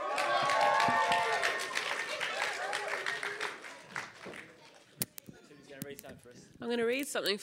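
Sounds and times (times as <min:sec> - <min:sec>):
people whooping at a Christian worship gathering: 0:00.0 - 0:03.5
crowd at a Christian worship gathering applauding: 0:00.0 - 0:05.0
speech: 0:06.7 - 0:07.4.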